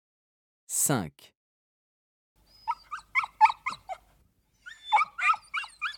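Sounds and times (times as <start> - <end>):
speech: 0.7 - 1.4
dog whimpering: 2.5 - 5.9.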